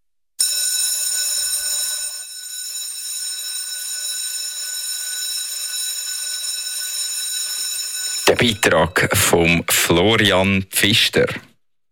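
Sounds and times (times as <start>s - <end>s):
electric school bell ringing in Nidwalden classrooms: 0.4s - 9.6s
speech: 8.3s - 11.5s.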